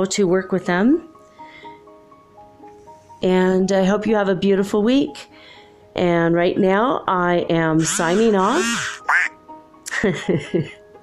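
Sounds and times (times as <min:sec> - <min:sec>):
speech: 0:00.0 - 0:01.1, 0:03.2 - 0:09.3, 0:09.9 - 0:10.8
duck quacking: 0:07.8 - 0:09.4.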